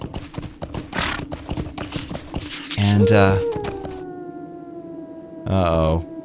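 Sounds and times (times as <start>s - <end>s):
horse hooves clip-clopping: 0.0s - 4.0s
horse snorting: 0.9s - 1.3s
speech: 2.8s - 3.5s, 5.5s - 6.1s
wolf howling: 2.8s - 6.2s.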